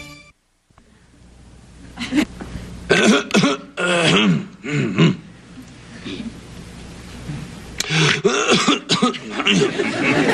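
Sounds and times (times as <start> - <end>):
laughter: 1.9 - 2.3, 9.1 - 10.3
person clearing throat: 2.9 - 5.3, 7.8 - 9.7
person coughing: 2.9 - 5.3, 6.0 - 6.4, 7.9 - 9.7.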